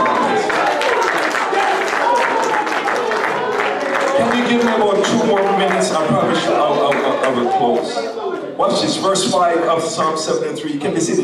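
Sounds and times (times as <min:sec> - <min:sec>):
congregation clapping at a Sunday church service: 0:00.0 - 0:08.2
congregation shouting praise at a Sunday church service: 0:00.0 - 0:09.4
speech: 0:07.6 - 0:11.2.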